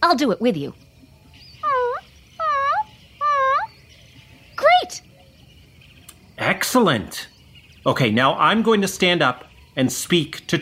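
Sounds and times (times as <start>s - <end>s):
speech: 0.1s - 0.9s, 6.4s - 10.5s
person imitating a puppy's soft whimper: 1.6s - 3.7s.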